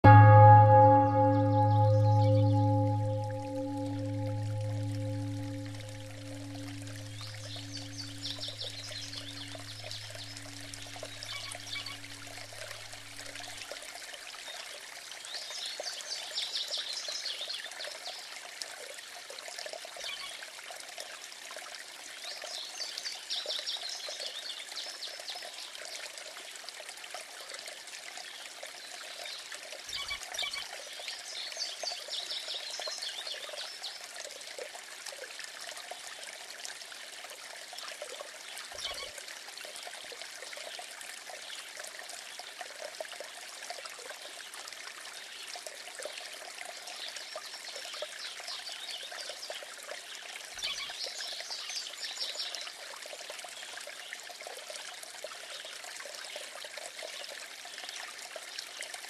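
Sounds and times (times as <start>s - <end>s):
stream flowing: 0.0s - 59.0s
bell ringing: 0.1s - 6.9s.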